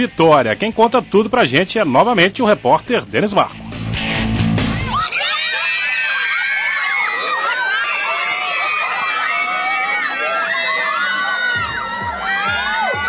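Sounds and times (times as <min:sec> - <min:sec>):
speech: 0:00.0 - 0:03.6
crowd at a swimming competition screaming and cheering for a swimmer: 0:04.5 - 0:13.0.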